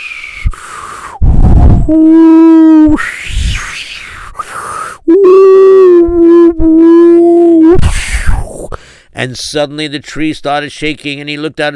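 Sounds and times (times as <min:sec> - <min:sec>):
person imitating howling wind in a thunderstorm: 0:00.0 - 0:08.7
speech: 0:01.9 - 0:03.1, 0:09.2 - 0:11.7.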